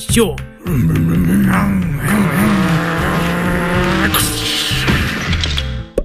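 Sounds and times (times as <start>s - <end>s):
speech: 0.1s - 2.4s
racing car engines roaring and whining: 0.8s - 5.7s
squealing skidding tires: 1.4s - 5.7s
race cars crashing: 2.0s - 5.8s.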